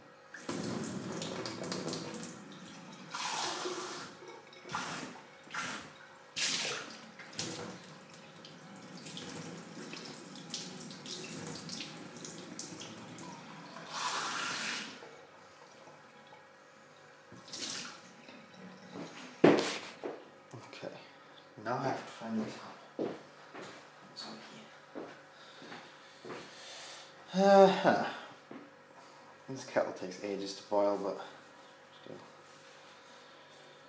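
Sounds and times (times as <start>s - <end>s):
water running from a tap: 0.4s - 16.4s, 17.4s - 19.4s
cup being rinsed and washed by hand: 0.4s - 16.5s, 17.3s - 20.2s
speech: 21.7s - 22.6s, 27.4s - 28.1s, 29.7s - 31.4s.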